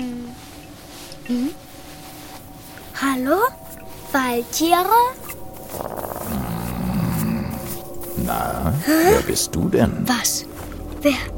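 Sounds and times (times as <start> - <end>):
speech: 1.3 - 1.6, 3.1 - 6.0, 8.3 - 11.3
wolf growling: 4.2 - 9.4.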